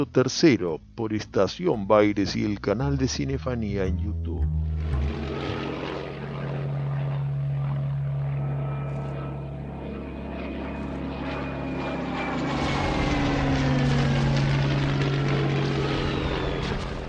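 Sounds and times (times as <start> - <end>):
speech: 0.0 - 5.0
multi-engine propeller bomber aircraft droning overhead during bombing: 4.1 - 17.0.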